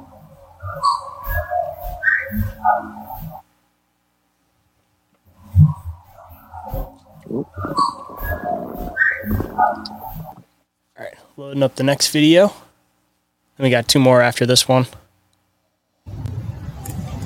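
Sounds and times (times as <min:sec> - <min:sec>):
whistling: 0:00.7 - 0:03.3, 0:07.5 - 0:10.3
speech: 0:11.5 - 0:12.6, 0:13.6 - 0:15.0.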